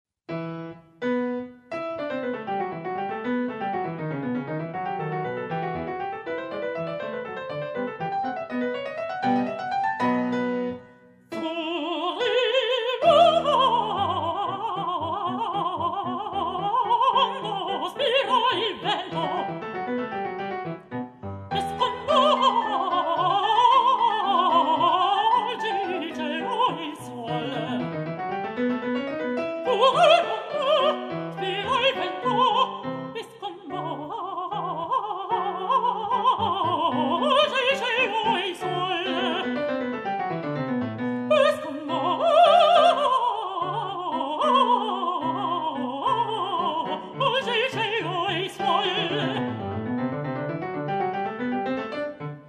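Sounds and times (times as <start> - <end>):
piano accompaniment: 0.3 - 52.4
mezzo-soprano singing an aria: 9.2 - 20.4, 21.3 - 40.0, 41.0 - 50.2.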